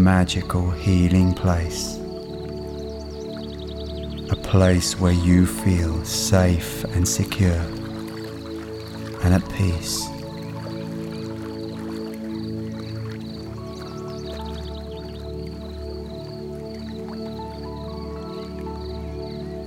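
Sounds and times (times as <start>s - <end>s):
speech: 0.0s - 2.0s, 4.3s - 7.8s, 9.2s - 10.1s
stream water trickling and dripping: 0.0s - 19.6s.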